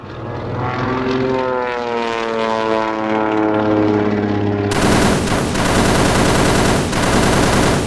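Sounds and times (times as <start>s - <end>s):
propeller plane droning overhead: 0.0s - 7.8s
machine gun fire at a plane: 4.7s - 7.8s.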